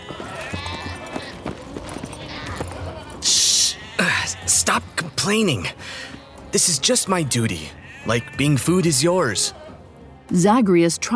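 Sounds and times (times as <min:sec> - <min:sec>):
goat hooves clopping on a crumbling stone platform: 0:00.0 - 0:03.2
goats bleating: 0:00.0 - 0:05.0, 0:07.4 - 0:09.8
speech: 0:04.6 - 0:05.8, 0:06.5 - 0:09.6, 0:10.3 - 0:11.1.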